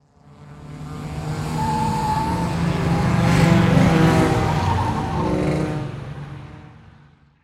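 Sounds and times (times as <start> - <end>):
lots of race cars driving by on a turn: 0.1 - 7.4
race car tires squealing on a turn: 1.2 - 6.2.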